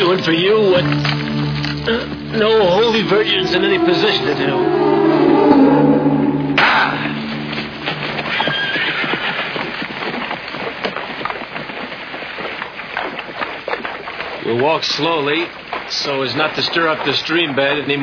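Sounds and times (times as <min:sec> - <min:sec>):
horse hooves clip-clopping: 0:00.0 - 0:04.2, 0:07.2 - 0:18.0
speech: 0:00.0 - 0:05.2, 0:14.5 - 0:18.0
horse neighing: 0:01.7 - 0:09.8.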